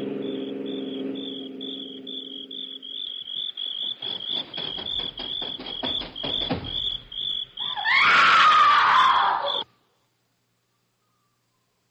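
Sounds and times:
crickets chirping at night: 0.0 - 9.7
woman screaming in the distance: 7.6 - 9.6.

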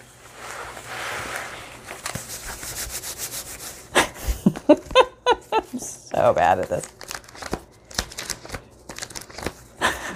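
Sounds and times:
paper being handled in a junk journal made from a paper bag: 0.1 - 3.6, 6.5 - 9.8
speech: 4.7 - 5.0, 6.2 - 7.0.

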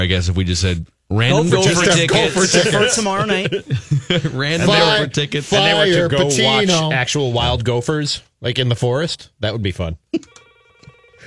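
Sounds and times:
speech: 0.0 - 10.4
laughter: 1.5 - 6.8
telephone ringing with a buzzing electronic tone: 10.2 - 11.2.

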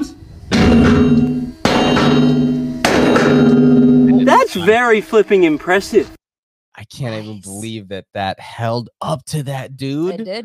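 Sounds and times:
huge 7-meter hammer slamming into an anvil: 0.5 - 4.2
speech: 0.7 - 1.6, 4.6 - 6.2, 6.8 - 10.4.

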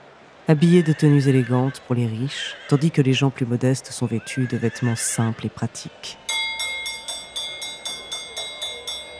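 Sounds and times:
speech: 0.5 - 6.2
bell ringing rapidly to start a horse race: 6.3 - 9.1.

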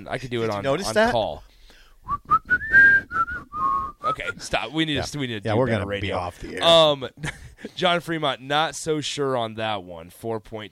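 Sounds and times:
speech: 0.0 - 2.4, 4.2 - 10.7
person whistling a short bright tune: 2.1 - 4.4.

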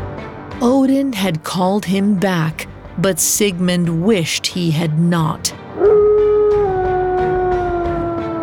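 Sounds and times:
speech: 0.6 - 5.6
wolf howling: 5.8 - 8.4.

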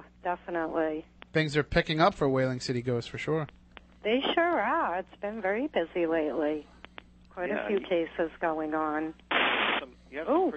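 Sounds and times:
speech: 0.2 - 6.7, 7.4 - 9.2, 10.1 - 10.5
loud blast of static hiss: 9.3 - 9.9
garbled tinny radio squawks: 9.3 - 10.0.

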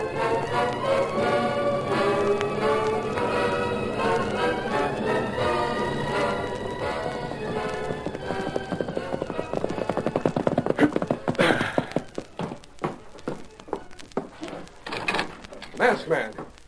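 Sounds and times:
music: 0.0 - 16.3
horse galloping hooves: 0.0 - 16.6.

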